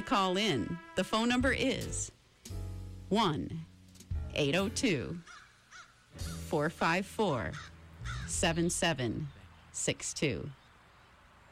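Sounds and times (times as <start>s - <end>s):
speech: 0.1s - 2.2s, 3.1s - 3.7s, 4.4s - 5.4s, 6.2s - 7.7s, 8.3s - 10.6s
crows cawing in the woods of Plainfield, Vermont: 5.2s - 6.5s, 7.5s - 8.4s.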